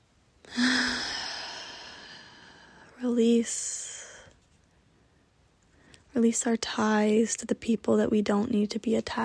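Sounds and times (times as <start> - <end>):
person exhaling a deep breath during a guided breathing exercise: 0.5 - 2.9
speech: 3.0 - 3.9, 6.2 - 9.2.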